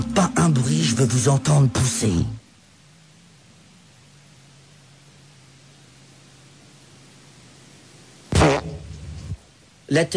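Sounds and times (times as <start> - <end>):
speech: 0.2 - 2.4, 9.9 - 10.1
fart: 8.3 - 9.0.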